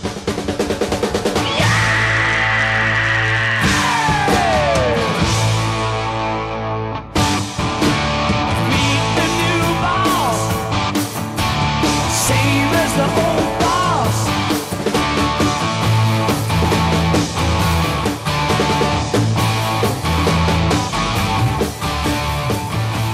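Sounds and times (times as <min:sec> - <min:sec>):
pounding drums: 0:00.0 - 0:05.8, 0:07.2 - 0:23.1
driving guitars: 0:00.0 - 0:23.1
loud dense rock music: 0:00.0 - 0:23.1
rock singer's long sustained scream: 0:01.4 - 0:05.6, 0:12.0 - 0:14.7.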